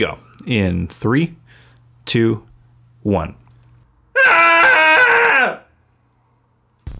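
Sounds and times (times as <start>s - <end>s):
speech: 0.0s - 1.4s, 2.1s - 3.4s
several voices screaming together: 4.2s - 5.7s.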